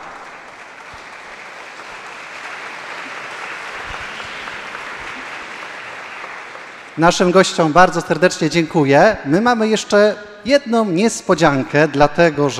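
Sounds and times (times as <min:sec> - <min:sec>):
sizable audience applauding at the National Sanctuary of Saint Joseph: 0:00.0 - 0:08.2
speech: 0:07.0 - 0:12.5.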